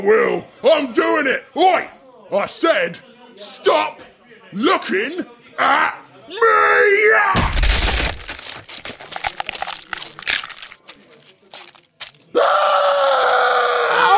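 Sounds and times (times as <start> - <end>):
speech: 0.0 - 7.6, 12.4 - 14.1
heavy punch landing with a thick thud: 7.4 - 8.4
crunching splintering cracks of arm bone shattering: 7.4 - 12.3.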